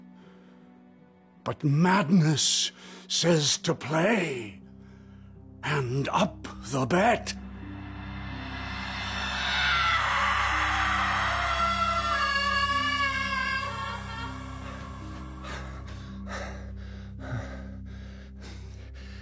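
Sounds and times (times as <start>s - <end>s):
speech: 1.5s - 4.6s, 5.6s - 7.4s
short breathy gasps: 2.7s - 3.1s, 7.4s - 19.2s
low steady rumble: 7.3s - 19.2s
loud high-pitched scream in the night: 7.6s - 15.7s.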